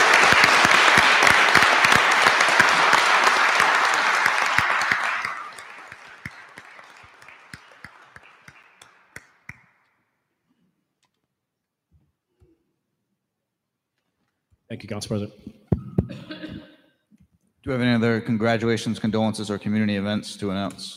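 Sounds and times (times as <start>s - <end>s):
roomful of people at a council meeting applauding: 0.0s - 9.8s
speech: 14.9s - 15.6s, 17.7s - 20.9s.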